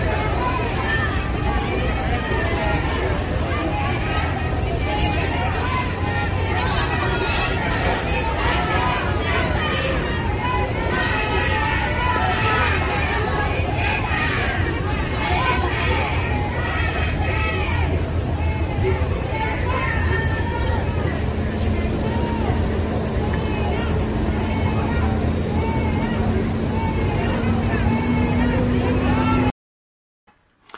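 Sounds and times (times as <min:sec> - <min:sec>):
large crowd booing and shouting in Granada Spain: 0:00.0 - 0:29.5.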